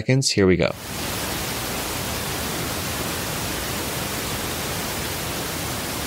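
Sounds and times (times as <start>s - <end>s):
speech: 0.0s - 1.2s
pink noise hissing for tinnitus masking: 0.7s - 6.0s.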